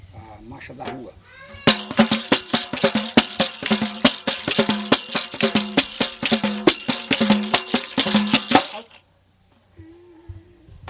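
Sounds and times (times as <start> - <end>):
street march music: 1.7 - 9.0.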